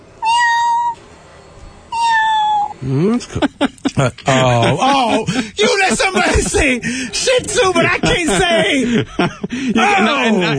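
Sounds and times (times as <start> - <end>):
woman imitating a cat's relaxed meow: 0.2 - 1.0, 1.9 - 2.7
speech: 2.8 - 10.5
laughter: 3.0 - 10.5.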